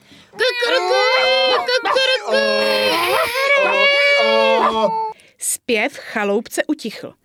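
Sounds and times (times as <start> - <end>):
voices imitating donkey, dog, cat and rooster: 1.5 - 4.9
speech: 5.7 - 7.2.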